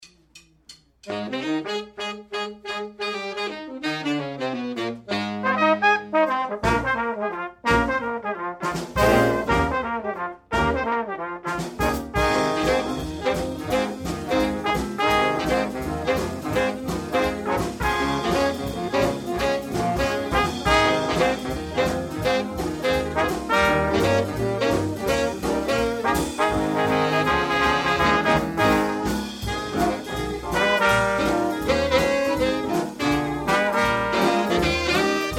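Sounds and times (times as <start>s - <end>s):
swing band orchestra playing: 0.0s - 35.3s.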